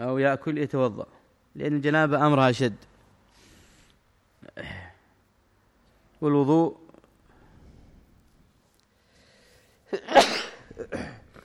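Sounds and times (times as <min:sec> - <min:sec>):
speech: 0:00.0 - 0:02.9, 0:06.2 - 0:06.8
person sneezing during a religious lesson: 0:09.9 - 0:11.4.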